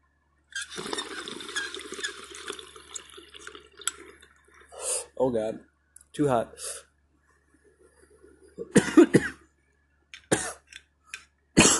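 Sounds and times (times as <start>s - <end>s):
water bubbling in a dab rig during a hit: 0.6s - 4.8s
speech: 5.2s - 6.7s.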